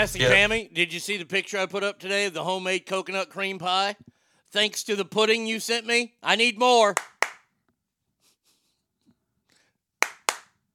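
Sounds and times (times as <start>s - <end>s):
speech: 0.0s - 7.1s
hands clapping: 6.9s - 7.5s, 10.0s - 10.6s.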